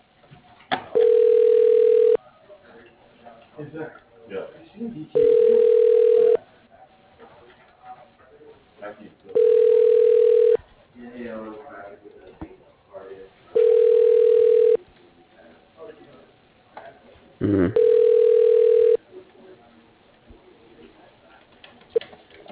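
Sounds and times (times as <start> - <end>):
faint murmur: 0.0 - 22.5
telephone ringback tone during call transfer: 1.0 - 2.2, 5.2 - 6.4, 9.4 - 10.6, 13.6 - 14.8, 17.8 - 19.0.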